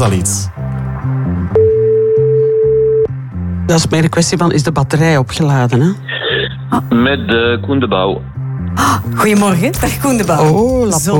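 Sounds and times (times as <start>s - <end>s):
speech: 0.0s - 1.2s, 3.7s - 6.1s, 6.7s - 11.1s
steady single-pitched telephone line tone: 1.6s - 3.1s.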